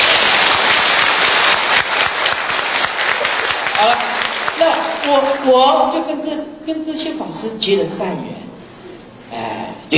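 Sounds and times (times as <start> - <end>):
room full of people clapping: 0.0 - 5.8
speech: 5.1 - 8.4, 9.3 - 9.9.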